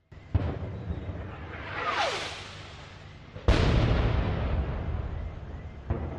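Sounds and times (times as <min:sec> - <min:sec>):
rocket explosions near the presidential palace in Kabul: 0:00.0 - 0:06.1
rising whoosh: 0:01.0 - 0:03.6.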